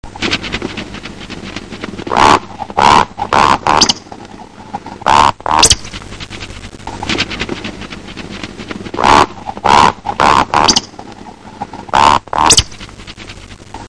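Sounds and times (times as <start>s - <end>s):
woodcock: 2.1s - 6.0s, 8.9s - 12.8s.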